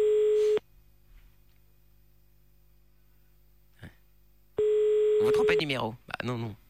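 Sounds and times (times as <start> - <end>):
telephone tone as a call is cut off: 0.0 - 0.6, 4.6 - 5.7
speech: 5.3 - 6.6.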